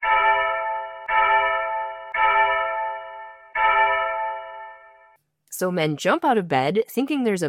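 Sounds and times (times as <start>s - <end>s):
heavy village fire bell rung hard: 0.0s - 5.2s
speech: 5.6s - 7.4s.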